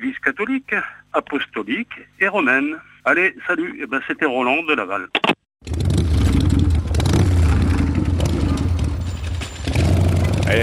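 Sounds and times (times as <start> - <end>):
speech: 0.2 - 5.8
motorcycle engine revving: 5.6 - 10.6.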